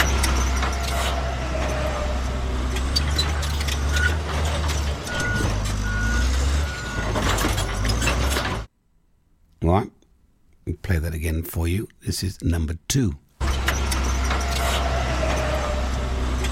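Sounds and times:
heavy bulldozer engine rumbling: 0.0s - 8.7s, 13.4s - 16.4s
bulldozer reversing alarm high warning beeps: 5.1s - 7.2s
speech: 11.2s - 13.2s.

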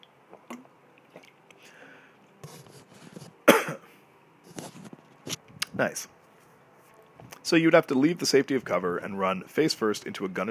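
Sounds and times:
wet mouth noises: 0.0s - 1.6s
person drinking water with gulps and swallows: 0.3s - 1.4s
speech: 5.8s - 6.2s, 7.5s - 10.4s.

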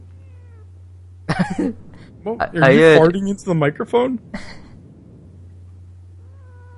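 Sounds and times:
steady low hum: 0.0s - 6.7s
speech: 1.4s - 4.6s
cat meowing: 6.2s - 6.7s.

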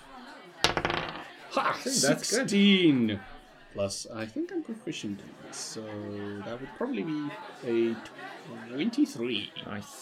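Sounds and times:
die rolling on a hard surface: 0.7s - 1.3s
speech: 1.5s - 9.9s.

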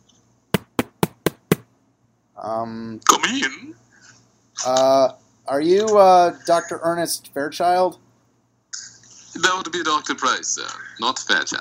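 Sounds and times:
firm knocks on a door: 0.6s - 1.6s
speech: 2.4s - 3.9s, 4.6s - 8.0s, 9.4s - 11.5s.

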